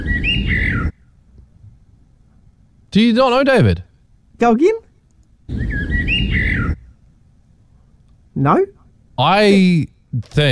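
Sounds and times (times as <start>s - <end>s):
bird squawking call: 0.0s - 1.1s, 5.5s - 7.0s
speech: 2.9s - 4.8s, 8.4s - 10.5s.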